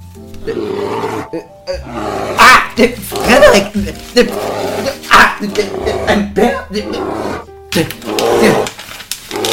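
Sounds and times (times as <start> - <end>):
speech: 0.4 - 2.2, 2.8 - 3.0, 3.6 - 4.7, 5.4 - 8.6
bear roaring and growling: 0.4 - 7.5, 8.1 - 9.5
person shouting: 2.4 - 2.8.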